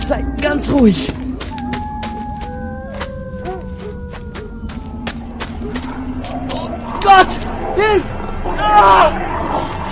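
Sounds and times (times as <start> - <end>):
several wolves howling: 0.0 - 9.9
speech: 0.1 - 1.2.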